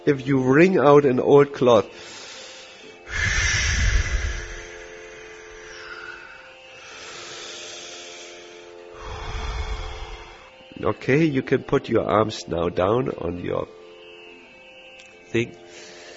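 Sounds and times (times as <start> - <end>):
speech: 0.0 - 2.2, 10.8 - 13.8, 15.3 - 15.6
long breathing exhales during a guided relaxation exercise: 1.9 - 10.8, 15.7 - 16.1.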